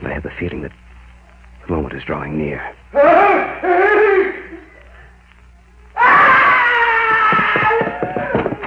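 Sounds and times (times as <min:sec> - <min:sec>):
speech: 0:00.1 - 0:00.9, 0:01.6 - 0:04.6
human scream: 0:03.0 - 0:04.6, 0:06.0 - 0:08.1
laughter: 0:03.0 - 0:05.0, 0:07.1 - 0:08.6.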